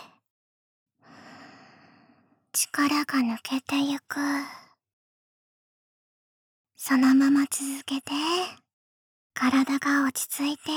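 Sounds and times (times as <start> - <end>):
slow exhale of breath during a guided relaxation breathing exercise: 1.1 - 2.4
speech: 2.6 - 4.6, 6.8 - 8.6, 9.4 - 10.7.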